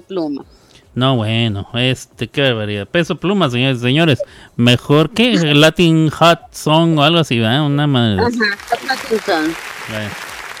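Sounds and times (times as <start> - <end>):
speech: 0.1 - 10.2
canned applause sound effect: 8.2 - 10.5
overlapping voices: 8.2 - 10.5.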